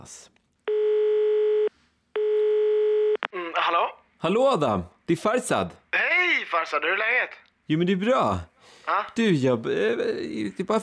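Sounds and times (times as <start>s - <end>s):
speech: 0.0s - 0.3s, 3.7s - 5.8s, 6.5s - 10.8s
telephone ringing tone as a call is placed: 0.7s - 3.2s.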